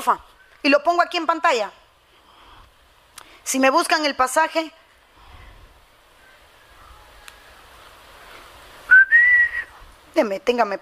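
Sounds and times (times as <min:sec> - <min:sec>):
speech: 0:00.0 - 0:01.8, 0:03.4 - 0:04.8, 0:10.2 - 0:10.8
person whistling a short phrase: 0:08.9 - 0:09.7.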